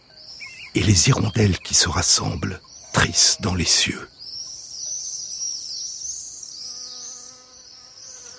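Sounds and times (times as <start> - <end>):
speech: 0.8 - 4.2
bee buzzing: 6.4 - 8.3.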